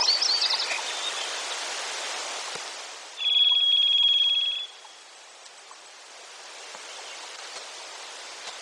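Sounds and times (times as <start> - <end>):
Varied thrush singing in Denali, Alaska: 3.2 - 4.8.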